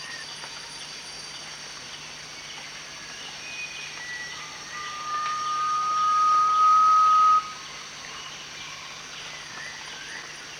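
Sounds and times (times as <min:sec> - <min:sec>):
constant high background hiss: 0:00.0 - 0:10.5
Garnet pitta giving a pure even whistle at Danum in Borneo: 0:04.0 - 0:07.6.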